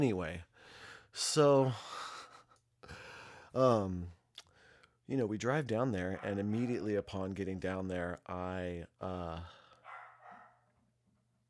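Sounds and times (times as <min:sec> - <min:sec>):
speech: 0:00.0 - 0:00.5, 0:01.1 - 0:02.0, 0:03.6 - 0:04.2, 0:05.1 - 0:09.6
dog barking faintly: 0:06.1 - 0:06.8, 0:09.8 - 0:10.7.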